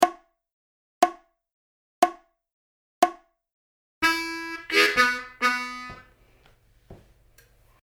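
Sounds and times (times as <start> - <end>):
harmonica playing 12 bar country style blues turnaround: 4.0 - 6.4.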